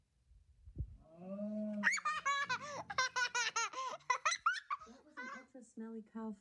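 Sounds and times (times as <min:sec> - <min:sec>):
child giggling and laughing: 0:01.8 - 0:05.5.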